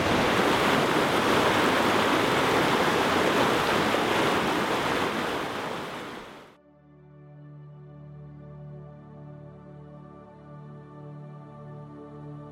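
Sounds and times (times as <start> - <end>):
rushing river in heavy rain: 0.0 - 6.5.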